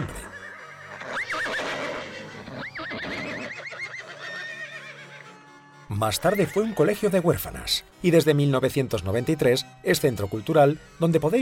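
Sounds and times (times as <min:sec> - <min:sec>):
horse whinnying loudly in royal stables: 0:00.0 - 0:05.3
speech: 0:06.0 - 0:11.4.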